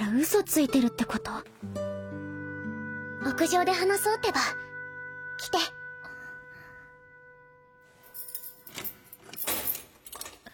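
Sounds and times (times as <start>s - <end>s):
speech: 0.2s - 1.9s, 3.2s - 4.6s, 5.4s - 5.8s
keys jangling and clinking: 8.1s - 10.5s.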